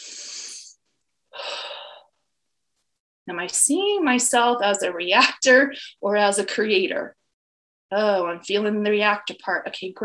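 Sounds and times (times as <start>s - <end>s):
long deep breaths: 1.3s - 2.2s
speech: 3.2s - 7.2s, 7.9s - 10.0s.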